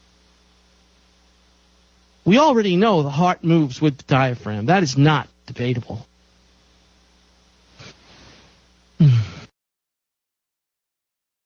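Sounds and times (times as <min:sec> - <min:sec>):
speech: 0:02.2 - 0:06.1
deep breath with voiced exhale: 0:07.8 - 0:09.5.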